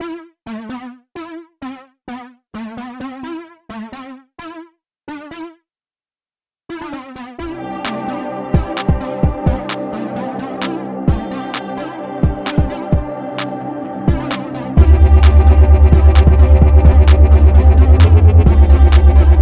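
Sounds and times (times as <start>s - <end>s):
chill beat: 7.4s - 19.4s.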